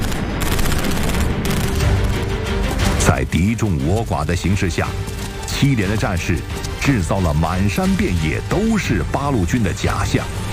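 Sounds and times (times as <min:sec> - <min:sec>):
gunfire from soldiers of three platoons: 0:00.0 - 0:02.3
speech: 0:03.2 - 0:10.4.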